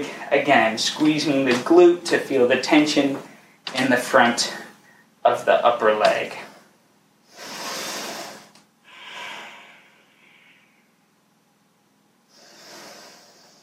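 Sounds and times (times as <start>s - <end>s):
speech: 0.0s - 4.6s, 5.2s - 6.4s
deep breathing in and out during a stretching exercise routine: 4.6s - 5.2s, 6.4s - 11.1s, 12.3s - 13.6s.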